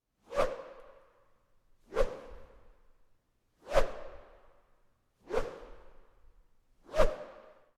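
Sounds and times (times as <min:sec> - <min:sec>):
rake swing whoosh in a hall: 0:01.9 - 0:02.7, 0:03.7 - 0:04.4, 0:05.3 - 0:06.0, 0:06.9 - 0:07.6.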